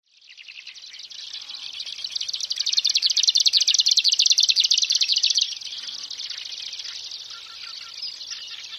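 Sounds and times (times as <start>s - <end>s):
Marsh grassbird buzzy rattling song: 0.1s - 8.7s.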